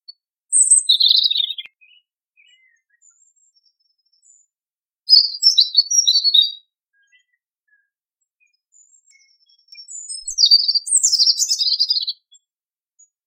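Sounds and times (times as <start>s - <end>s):
European robin: 0.0s - 13.1s.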